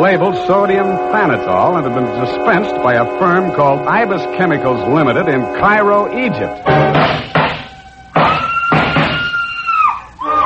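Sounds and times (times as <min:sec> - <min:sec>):
speech: 0:00.0 - 0:07.3
woman screaming in high frenzied bursts: 0:08.3 - 0:10.4.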